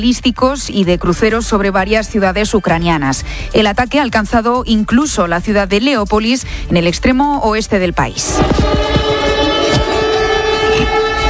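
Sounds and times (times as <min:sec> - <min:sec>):
speech: 0:00.0 - 0:08.9
air raid sirens with steady droning layered tone: 0:08.2 - 0:11.2.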